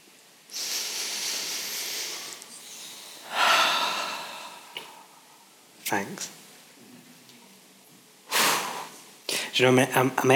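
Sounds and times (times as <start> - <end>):
audience taking a deep breath together: 0.5 - 5.4
speech: 5.9 - 6.4, 9.6 - 10.3.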